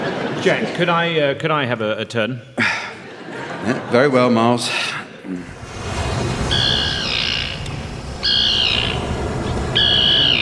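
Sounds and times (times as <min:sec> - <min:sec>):
laughter: 0:00.0 - 0:01.2, 0:02.6 - 0:05.6
speech: 0:00.4 - 0:02.6, 0:03.6 - 0:05.6
low rumble of noise: 0:05.4 - 0:10.4
tern giving harsh drawn-out calls: 0:06.4 - 0:10.4.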